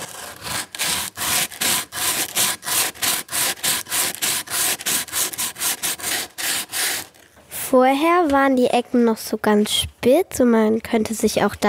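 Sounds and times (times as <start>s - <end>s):
wood sanded by hand with cork block and P100 sandpaper: 0.0s - 7.2s
speech: 7.7s - 11.6s.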